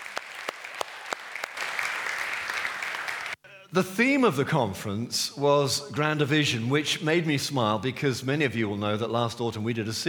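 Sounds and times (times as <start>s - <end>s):
audience applause: 0.0s - 3.4s
speech: 3.7s - 10.0s.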